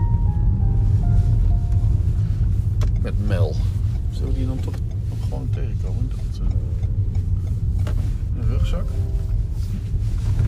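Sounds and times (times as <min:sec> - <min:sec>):
car driving by with deep engine rumble: 0:00.0 - 0:10.4
speech: 0:03.3 - 0:06.9, 0:07.8 - 0:10.4.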